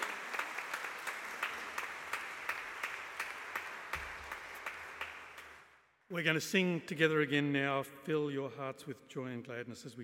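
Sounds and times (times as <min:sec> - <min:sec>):
crowd applauding: 0:00.0 - 0:05.8
speech: 0:06.1 - 0:10.0.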